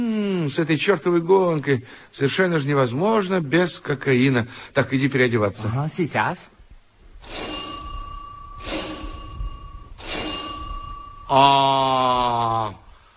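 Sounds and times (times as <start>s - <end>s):
speech: 0.0s - 6.5s, 7.2s - 7.5s, 11.3s - 12.8s
doorbell ringing with a bright metallic ring: 7.2s - 12.6s
buzzing tone: 7.2s - 12.9s.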